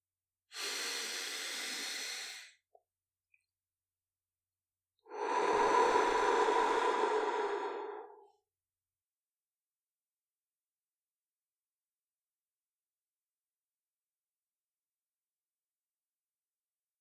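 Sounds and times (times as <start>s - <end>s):
slow breath in through the nose and out through the mouth: 0.6s - 2.5s, 5.1s - 8.4s.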